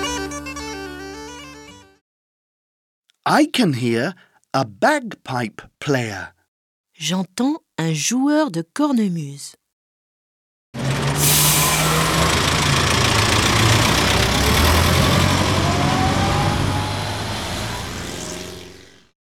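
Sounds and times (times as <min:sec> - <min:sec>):
speech: 0:03.2 - 0:06.4, 0:07.0 - 0:09.6
double-decker bus engine idling: 0:10.8 - 0:18.8.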